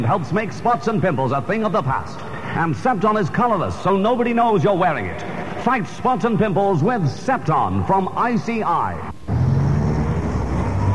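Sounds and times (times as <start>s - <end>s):
speech: 0.0s - 9.1s
busy town traffic with cars idling and moving: 9.2s - 10.9s.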